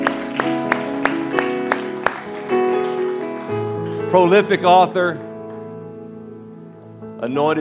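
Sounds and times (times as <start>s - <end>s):
audience clapping in praise: 0.0s - 5.0s
organ-like music: 0.0s - 7.5s
speech: 4.1s - 5.3s, 7.2s - 7.5s.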